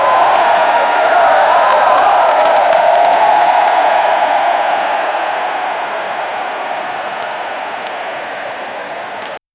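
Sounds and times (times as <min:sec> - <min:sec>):
huge concert crowd: 0:00.0 - 0:09.4.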